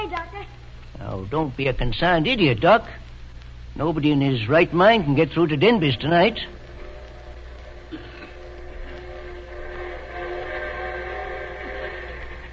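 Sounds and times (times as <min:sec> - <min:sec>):
speech: 0:01.2 - 0:03.0, 0:03.8 - 0:06.6
train whistle sounding a long tone: 0:08.9 - 0:12.5.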